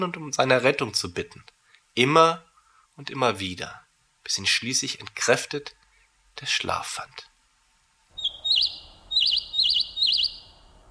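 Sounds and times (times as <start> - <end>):
speech: 0.0 - 5.8, 6.4 - 7.3
bird chirping in warbling phrases: 8.2 - 10.8.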